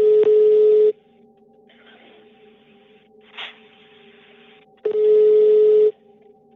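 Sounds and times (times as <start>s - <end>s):
telephone ringing: 0.0s - 1.0s, 4.8s - 6.0s
faint hum: 0.0s - 6.5s.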